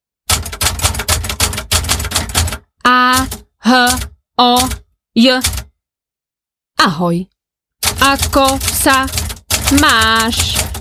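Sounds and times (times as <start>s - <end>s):
typewriter keys clattering: 0.3s - 4.8s, 5.4s - 5.7s, 7.8s - 10.7s
speech: 2.9s - 5.6s, 6.8s - 10.7s.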